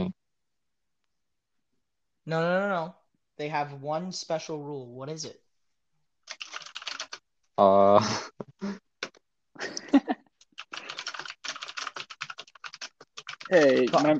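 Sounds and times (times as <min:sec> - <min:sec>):
speech: 0:02.3 - 0:05.4, 0:07.6 - 0:08.8, 0:13.5 - 0:14.1
typing on a computer keyboard: 0:06.3 - 0:07.2, 0:10.5 - 0:14.1.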